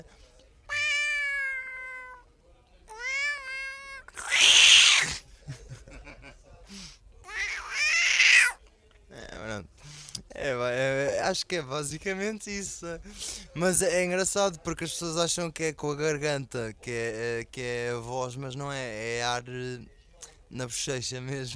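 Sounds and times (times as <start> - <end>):
voice imitating a cat meowing: 0.7 - 2.2, 2.9 - 5.2, 7.3 - 8.6
laughter: 5.3 - 6.5
speech: 11.3 - 21.5.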